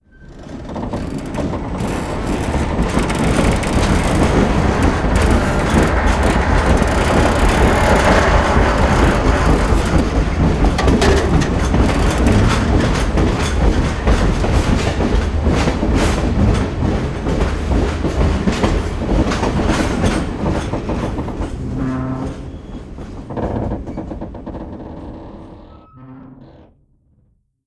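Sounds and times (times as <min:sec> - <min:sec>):
train rumble: 0:00.3 - 0:26.4
machines running: 0:01.2 - 0:17.0.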